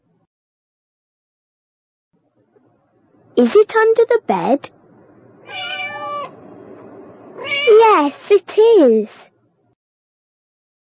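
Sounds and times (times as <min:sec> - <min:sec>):
speech: 0:03.4 - 0:04.8, 0:07.4 - 0:09.3
cat meowing: 0:05.4 - 0:06.4, 0:07.4 - 0:07.8.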